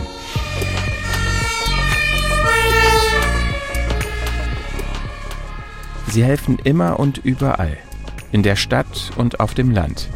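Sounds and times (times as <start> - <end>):
fire engine two-tone siren wailing: 0.0 - 7.3
deep fire engine engine rumble: 0.0 - 9.0
speech: 6.1 - 10.1.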